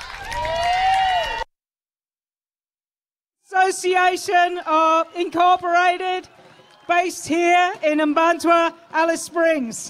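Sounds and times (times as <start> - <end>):
crowd applause for a performance in Alice Springs: 0.0 - 1.5, 4.7 - 9.8
speech: 3.7 - 9.8.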